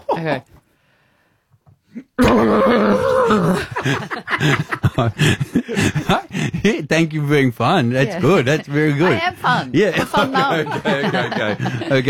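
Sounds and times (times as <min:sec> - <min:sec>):
speech: 0:00.2 - 0:00.6, 0:02.0 - 0:12.0
voice imitating a horse trapped in a plastic bag: 0:02.0 - 0:03.7
laughter: 0:02.2 - 0:06.9, 0:08.2 - 0:12.0
voice making breathy snorts and gasps: 0:03.8 - 0:06.7.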